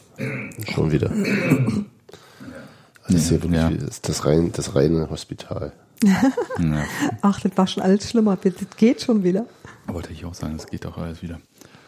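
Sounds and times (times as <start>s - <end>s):
speech: 0.2s - 1.9s, 3.1s - 11.6s
person clearing throat with a rough guttural rasp: 0.2s - 2.0s.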